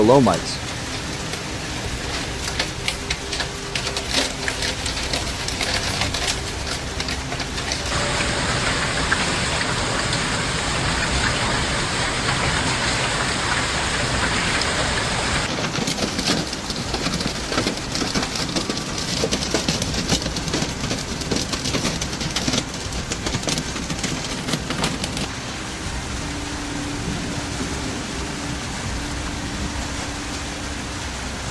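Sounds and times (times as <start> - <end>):
heavy rain during severe thunderstorms in Piedmont and northeastern Italy: 0.0 - 31.5
speech: 0.1 - 0.6.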